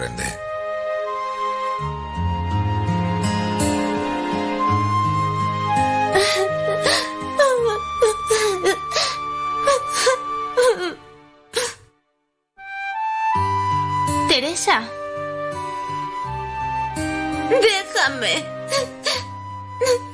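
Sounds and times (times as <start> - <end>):
speech: 0.0 - 0.4
soft sustained musical backdrop: 0.0 - 20.1
girl crying and whimpering in wailing sobs: 6.1 - 11.0, 18.6 - 20.1.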